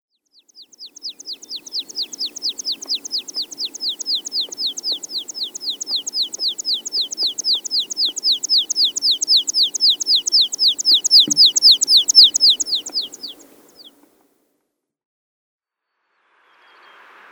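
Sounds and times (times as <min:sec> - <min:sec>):
American pipit calling: 0:00.7 - 0:13.9.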